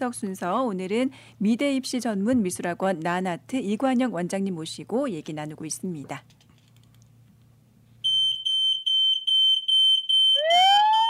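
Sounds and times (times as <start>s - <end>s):
speech: 0.0s - 6.4s
high-pitched security alarm beeping: 8.0s - 11.0s
security alarm rising wailing siren sweep: 10.2s - 11.0s.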